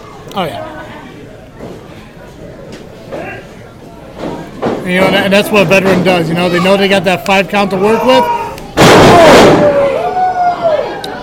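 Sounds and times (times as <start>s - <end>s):
speech: 0.2s - 0.8s, 4.8s - 8.4s
wrestler slamming onto the ring mat from a sidewalk slam: 8.8s - 9.8s.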